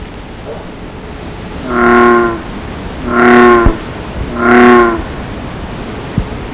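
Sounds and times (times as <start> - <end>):
bullfrog calling: 1.6 - 5.2.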